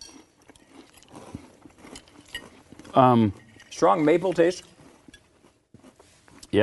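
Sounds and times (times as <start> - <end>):
chewing crunchy breakfast cereal with milk: 0.0 - 6.6
speech: 3.0 - 4.7.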